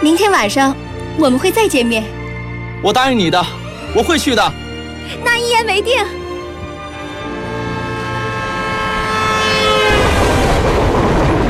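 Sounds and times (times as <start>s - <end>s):
speech: 0.0s - 2.2s, 2.8s - 6.2s
train horn: 7.1s - 11.0s
train rushing past across grassland: 7.1s - 11.4s.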